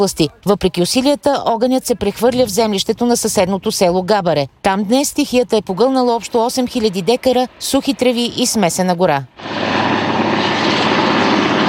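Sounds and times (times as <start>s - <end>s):
speech: 0.0s - 9.9s
Cougar helicopter rotor and engine roar flying over a forest fire: 6.2s - 11.6s.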